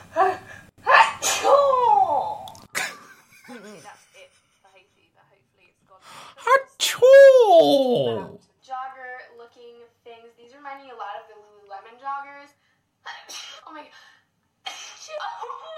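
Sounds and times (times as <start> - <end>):
loud sneezes: 0.9 - 1.7, 6.5 - 8.4.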